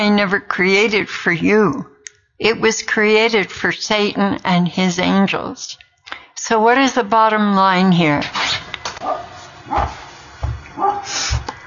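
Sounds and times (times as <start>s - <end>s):
speech: 0.0s - 5.8s, 6.4s - 10.0s, 10.8s - 11.5s
dog barking in a forest on the edge of a national park in freezing rain: 9.0s - 10.0s, 10.8s - 11.2s.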